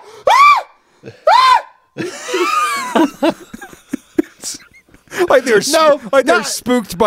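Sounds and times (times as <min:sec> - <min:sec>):
person imitating a terrified scream: 0:00.2 - 0:01.7
speech: 0:01.0 - 0:02.3, 0:05.4 - 0:07.0
laughter: 0:02.0 - 0:07.0.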